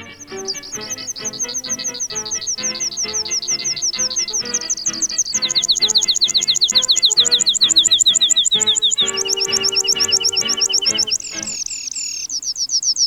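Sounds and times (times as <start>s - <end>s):
squeaky high calls of a red-throated pipit: 0.2s - 13.0s.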